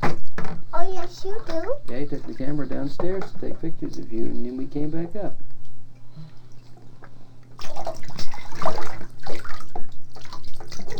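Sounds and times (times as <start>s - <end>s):
speech: 1.0s - 5.6s
water pouring and splashing in a bathtub: 7.6s - 10.9s.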